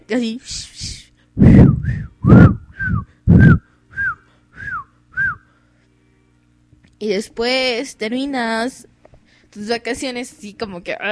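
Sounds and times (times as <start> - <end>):
speech: 0.1 - 1.6, 7.0 - 8.9, 9.5 - 11.1
person whistling chirping calls imitating birds: 1.6 - 5.5.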